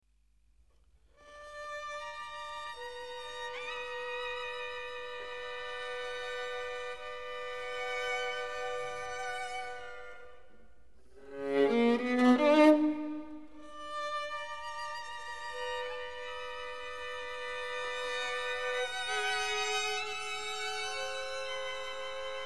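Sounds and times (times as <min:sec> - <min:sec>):
string quartet of two violins, viola and cello: 0:01.2 - 0:22.4.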